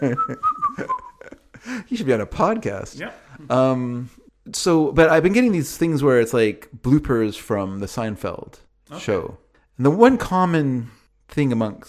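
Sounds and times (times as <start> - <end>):
speech: 0.0 - 1.0, 1.6 - 11.8
person whistling a wavering tune: 0.0 - 1.3.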